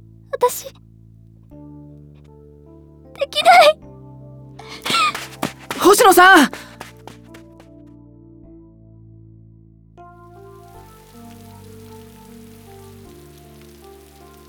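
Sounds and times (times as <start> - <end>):
speech: 0.4 - 0.8, 3.2 - 3.8, 6.0 - 6.7
heavy downpour rain: 4.8 - 5.8, 6.5 - 6.9, 10.4 - 14.4.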